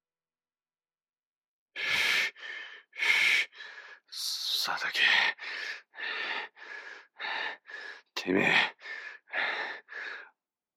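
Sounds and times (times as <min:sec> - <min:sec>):
heavy ragged breathing of a man bleeding from his arm: 0:01.8 - 0:04.1, 0:05.3 - 0:10.4
speech: 0:08.2 - 0:08.8.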